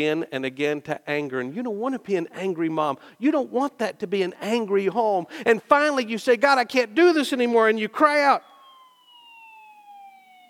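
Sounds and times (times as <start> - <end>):
speech: 0.0 - 8.5
ambulance siren wailing: 8.0 - 10.4.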